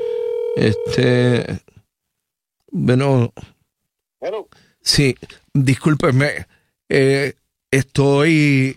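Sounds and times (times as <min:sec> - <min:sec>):
telephone ringing while placing a phone call: 0:00.0 - 0:01.0
speech: 0:00.6 - 0:01.8, 0:02.7 - 0:03.5, 0:04.2 - 0:08.7.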